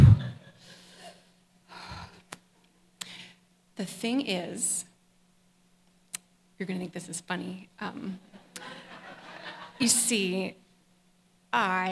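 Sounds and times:
person taking a deep breath to calm down: 0.6s - 2.2s
speech: 3.8s - 4.9s, 6.6s - 8.4s, 9.8s - 10.6s, 11.5s - 11.8s
laughter: 8.3s - 10.0s.

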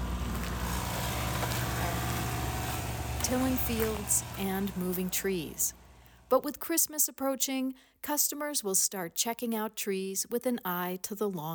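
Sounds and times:
small work truck engine running: 0.0s - 6.2s
speech: 3.3s - 11.5s.

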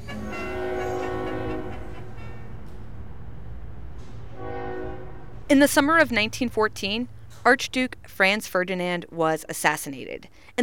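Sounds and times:
steam train horn blowing a long loud chord: 0.0s - 2.8s, 4.0s - 7.0s
steam train rumbling: 0.0s - 10.0s
speech: 5.5s - 10.6s.

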